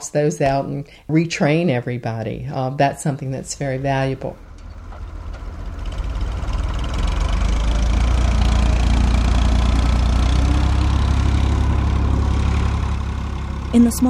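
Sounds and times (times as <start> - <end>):
speech: 0.1 - 4.5, 13.7 - 14.0
landscaping truck engine idling with a deep rumble: 3.3 - 14.0.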